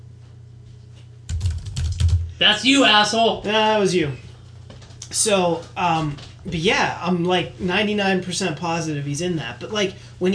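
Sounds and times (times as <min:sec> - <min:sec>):
computer keyboard typing: 0:01.3 - 0:02.3
speech: 0:02.4 - 0:04.2, 0:05.1 - 0:10.3.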